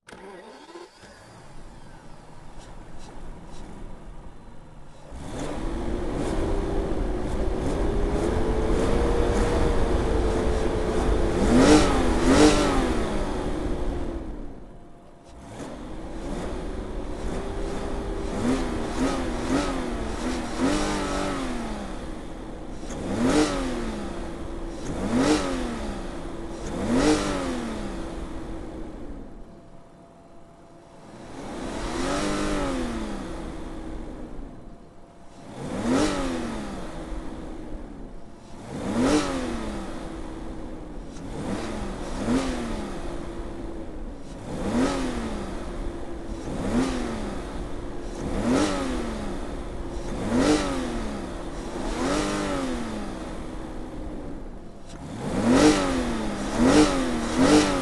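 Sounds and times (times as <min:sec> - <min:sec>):
BMW 760i engine starting: 0:00.0 - 0:57.8.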